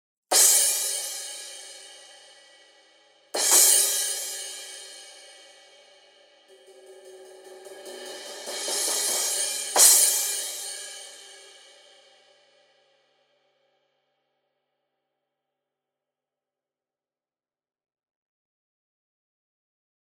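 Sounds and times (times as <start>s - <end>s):
thin 16-inch crash cymbal: 0.3s - 12.9s.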